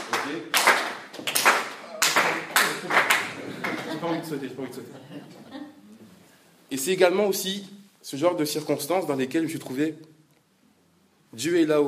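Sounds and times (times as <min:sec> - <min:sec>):
audience applauding during a talk: 0:00.0 - 0:04.1
speech: 0:00.3 - 0:01.3, 0:04.0 - 0:05.6, 0:06.7 - 0:10.2, 0:11.3 - 0:11.8
laughter: 0:02.7 - 0:06.0.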